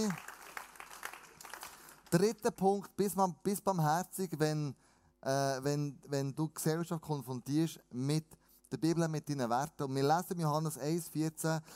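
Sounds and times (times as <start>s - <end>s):
speech: 0.0s - 0.3s, 2.1s - 11.7s
audience applause: 0.0s - 2.2s.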